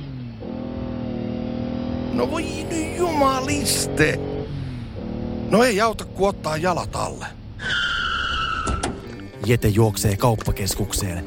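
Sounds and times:
car engine accelerating to escape pursuing vehicles: 0.0s - 9.4s
speech: 2.2s - 4.3s, 5.5s - 7.8s, 9.4s - 11.2s.

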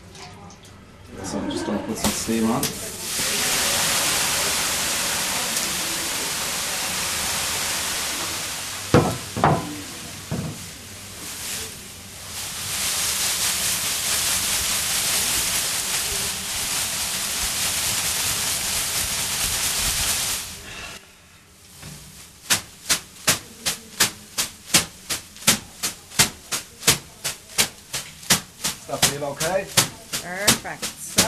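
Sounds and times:
steam hissing in a sauna in Ireland: 2.0s - 21.1s, 22.2s - 31.2s
bundle of leaves smacking gently against skin: 22.4s - 31.2s.

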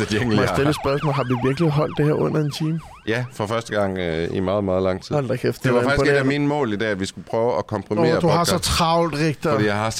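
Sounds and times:
ambulance siren played as a jingle: 0.0s - 4.0s
speech: 0.0s - 9.9s.

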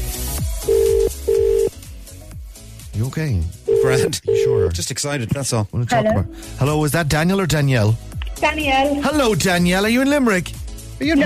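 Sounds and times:
outgoing phone call ringing tone: 0.7s - 1.7s, 3.7s - 4.7s
speech: 3.0s - 11.2s.

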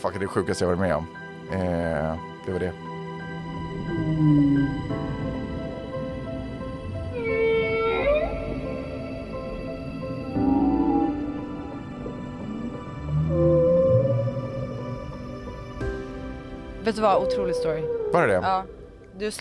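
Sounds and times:
speech: 0.0s - 2.9s, 4.0s - 5.2s, 16.9s - 19.4s
gray whale calling underwater with moans and groans: 3.2s - 5.5s, 7.1s - 9.4s, 10.2s - 15.4s, 17.2s - 19.0s.

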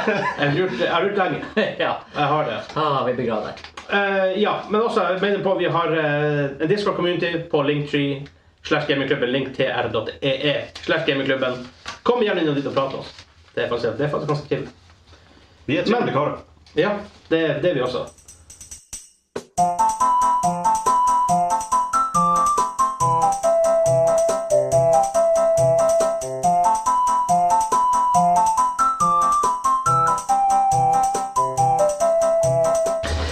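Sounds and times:
laughter: 0.0s - 1.8s
speech: 0.0s - 14.8s, 15.7s - 18.2s
bright looping video game music jingle: 19.6s - 33.2s.

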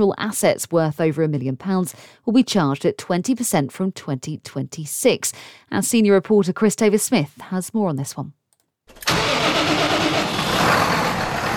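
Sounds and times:
speech: 0.0s - 9.2s
heavy tractor engine roaring on a farm in Wath-upon-Dearne: 9.0s - 11.5s.

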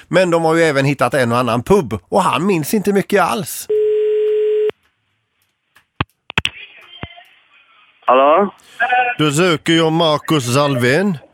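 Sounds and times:
speech: 0.0s - 3.8s, 8.1s - 11.3s
telephone ringing tone while placing a call: 3.7s - 4.7s
sharp clicks: 3.7s - 7.4s.

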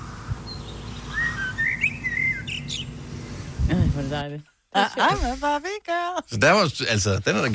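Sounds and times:
faint hiss: 0.0s - 7.5s
blackbird whistling fluting phrases copying a pop song melody: 0.4s - 3.4s
speech: 4.0s - 7.5s.

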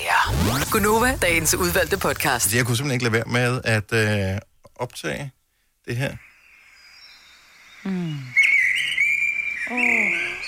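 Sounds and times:
speech: 0.2s - 6.3s, 7.8s - 8.4s, 9.7s - 10.2s
high continuous chirping: 5.9s - 10.4s
blackbird singing: 7.0s - 10.4s.

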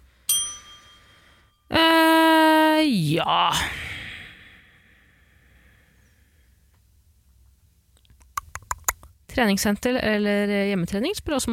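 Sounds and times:
bright bell chime struck: 0.3s - 1.7s
speech: 3.0s - 3.8s, 9.4s - 11.5s.

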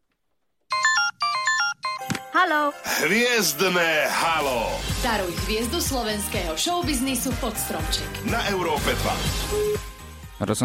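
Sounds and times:
telephone ringtone during an outgoing call: 0.7s - 2.2s
speech: 2.4s - 9.8s, 10.4s - 10.6s.

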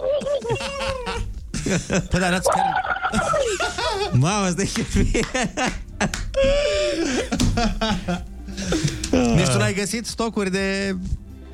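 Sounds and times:
laughter: 0.0s - 9.6s
speech: 1.7s - 8.3s, 9.5s - 11.2s
person imitating a turkey gobble: 2.5s - 3.4s.

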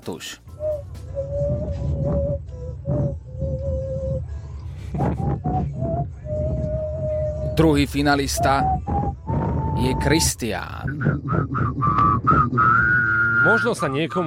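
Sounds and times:
speech: 0.0s - 0.6s, 7.6s - 8.9s, 9.8s - 14.2s
low rumbling background: 0.0s - 14.2s
mouth imitation of a fujara shepherd's flute: 0.6s - 14.0s.

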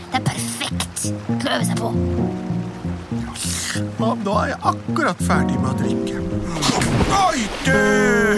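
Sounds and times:
steady tonal music: 0.0s - 8.3s
speech: 1.0s - 8.3s
water splash: 6.3s - 8.3s.

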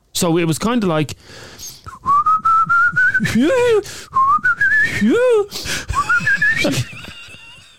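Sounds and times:
speech: 0.2s - 1.7s, 3.2s - 4.2s, 4.8s - 6.9s
breaths: 1.2s - 2.0s, 3.6s - 4.2s, 4.9s - 6.0s
breathy human whistling: 1.7s - 7.2s
laughter: 5.9s - 7.7s.

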